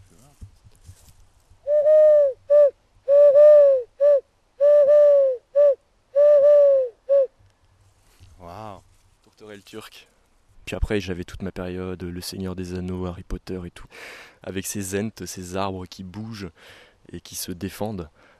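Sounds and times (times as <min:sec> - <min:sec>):
person imitating a turtle dove's cooing: 0:01.7 - 0:07.3
speech: 0:09.7 - 0:18.3.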